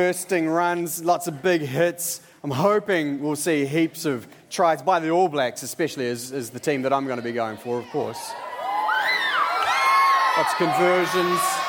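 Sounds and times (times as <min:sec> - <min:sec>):
speech: 0:00.0 - 0:08.5, 0:10.4 - 0:11.6
crowd cheering: 0:07.0 - 0:11.6
many overlapping voices shouting and whooping: 0:07.6 - 0:11.6.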